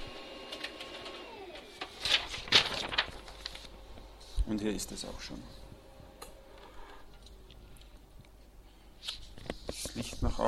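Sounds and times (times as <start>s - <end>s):
inkjet-style printer whirring and feeding out a sheet of sheet music: 0.0s - 7.0s
speech: 4.5s - 5.6s.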